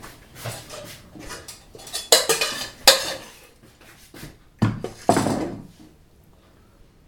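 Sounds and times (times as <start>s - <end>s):
metal spoon scraping and clinking against a pot scooping button mushrooms: 0.5s - 3.6s.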